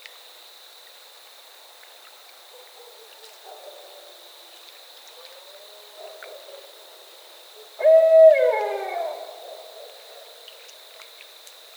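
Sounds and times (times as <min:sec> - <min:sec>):
barred owl call: 0:07.8 - 0:09.9.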